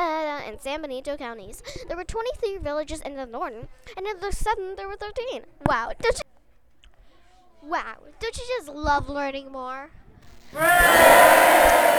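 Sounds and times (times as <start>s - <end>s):
speech: 0.5s - 6.3s, 7.6s - 11.9s
many voices cheering and yelling: 10.6s - 11.9s.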